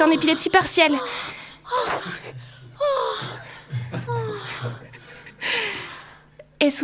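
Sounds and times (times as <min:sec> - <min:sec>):
speech: 0:00.0 - 0:03.4, 0:06.6 - 0:06.8
breathless gasping and panting: 0:01.0 - 0:06.3.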